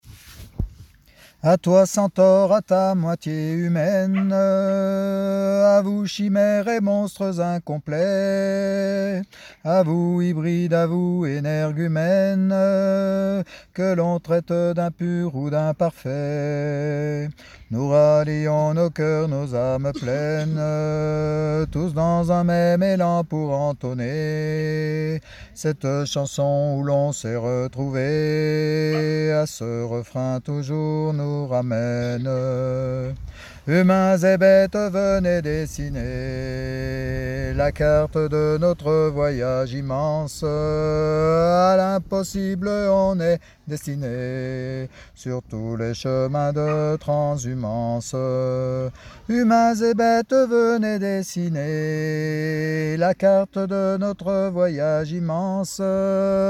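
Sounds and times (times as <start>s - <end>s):
lead vocal: 1.1s - 56.4s.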